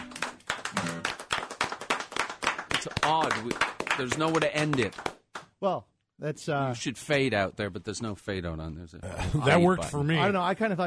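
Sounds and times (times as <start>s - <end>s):
group applauding a song: 0.0s - 5.6s
speech: 2.8s - 10.8s.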